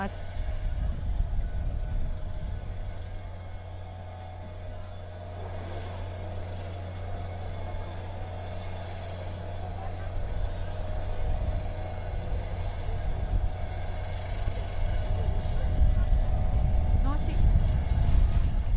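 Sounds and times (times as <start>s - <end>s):
speech: 0.0s - 0.3s
fire bureau aviation unit helicopter idling on escort ship: 0.0s - 18.7s.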